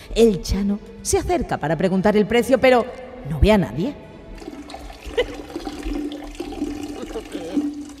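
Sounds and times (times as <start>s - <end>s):
speech: 0.2s - 4.1s
man urinating in London: 4.4s - 7.9s.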